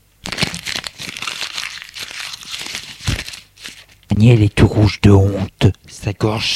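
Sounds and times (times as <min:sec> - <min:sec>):
paper being crumpled: 0:00.2 - 0:04.1
speech: 0:04.2 - 0:06.5.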